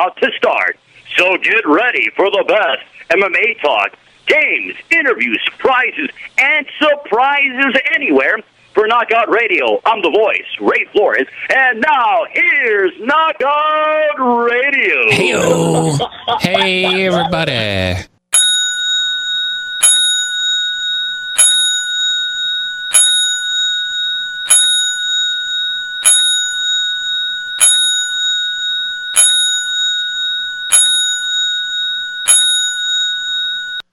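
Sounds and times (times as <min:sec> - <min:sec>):
speech: 0:00.0 - 0:18.1
laughter: 0:15.0 - 0:18.0
boxing ring bell struck as a ten-bell salute: 0:18.4 - 0:33.9.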